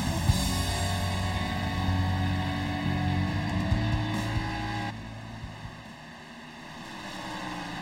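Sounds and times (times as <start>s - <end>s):
simulated race car engines roaring on an oval track: 0.0s - 7.7s.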